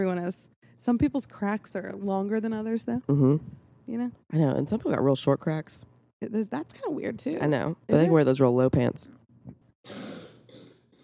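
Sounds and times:
speech: 0.0s - 9.2s, 9.8s - 10.1s
raspy throat-clearing: 9.8s - 11.0s
rough cough: 9.8s - 11.0s.

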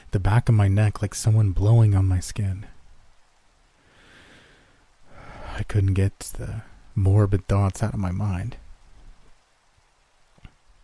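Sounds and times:
soft steady rainfall: 0.0s - 10.8s
speech: 0.1s - 2.7s, 5.6s - 8.6s.

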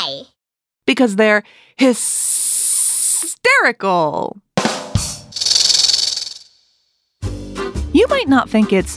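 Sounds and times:
speech: 0.9s - 2.4s, 3.4s - 4.4s, 7.9s - 8.9s
snake hissing: 2.1s - 3.2s, 5.3s - 6.6s.

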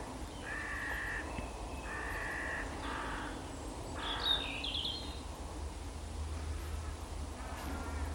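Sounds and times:
steady outdoor hiss: 0.0s - 8.1s
corvids cawing in flight: 0.4s - 3.4s, 4.0s - 4.4s.

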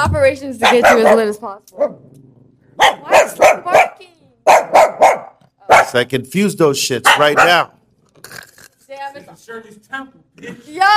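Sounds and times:
speech: 0.0s - 2.2s, 2.8s - 4.9s, 5.9s - 8.4s, 9.0s - 10.9s
dog barking: 0.6s - 2.0s, 2.8s - 6.0s, 7.0s - 7.7s.

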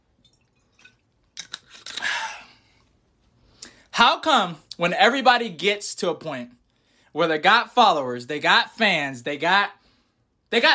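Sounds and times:
person sipping a drink: 0.2s - 3.0s
speech: 4.0s - 9.8s, 10.5s - 10.7s.

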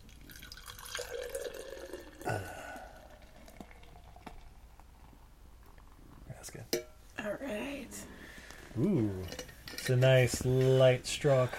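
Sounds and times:
Pilsner beer pouring into a glass: 0.0s - 6.0s
dripping and bubbling: 0.0s - 6.9s
speech: 2.3s - 2.6s, 8.8s - 11.5s.

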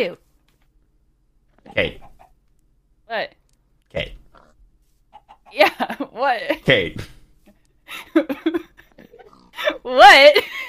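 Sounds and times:
speech: 0.0s - 0.2s, 1.7s - 2.1s, 3.1s - 4.2s, 5.5s - 7.2s, 7.9s - 8.7s, 9.6s - 10.6s
pig grunting and snorting: 1.6s - 2.2s, 3.9s - 4.6s, 9.1s - 9.6s.

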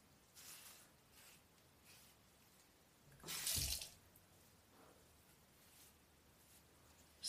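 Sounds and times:
water splashing and trickling while wetting hair: 3.2s - 4.0s.

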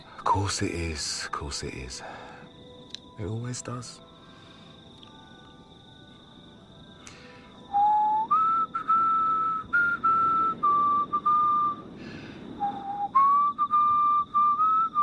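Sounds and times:
speech: 0.2s - 2.3s, 3.2s - 4.1s
person whistling a slow gentle lullaby-like melody: 7.0s - 11.9s, 12.6s - 15.0s.

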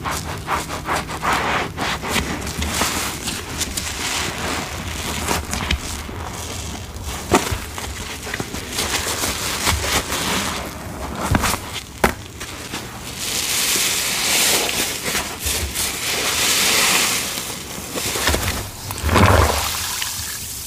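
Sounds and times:
sponge squeezed with wet squelches: 0.0s - 11.6s, 12.5s - 20.6s
longer gushing rinses of a sponge: 18.3s - 20.6s.

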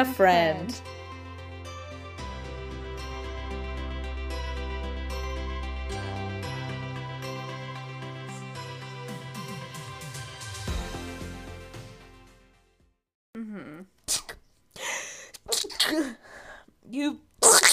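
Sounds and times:
speech: 0.0s - 0.9s, 16.9s - 17.2s
music: 0.0s - 13.0s
person sneezing: 14.1s - 14.4s, 15.3s - 16.3s, 17.4s - 17.7s.

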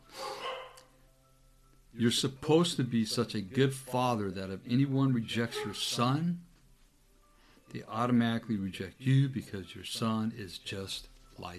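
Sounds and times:
quiet noise: 0.0s - 11.5s
dog barking: 0.2s - 0.9s
speech: 2.0s - 6.5s, 7.7s - 11.5s.

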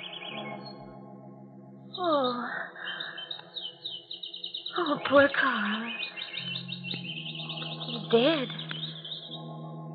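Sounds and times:
caged birds chirping and twittering: 2.8s - 9.5s
speech: 4.9s - 6.0s, 8.1s - 8.6s.

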